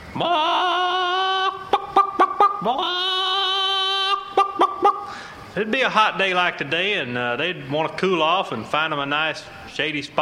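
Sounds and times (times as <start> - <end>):
hen squawking and clucking: 0.0 - 5.5
speech: 0.2 - 0.5, 5.6 - 10.2.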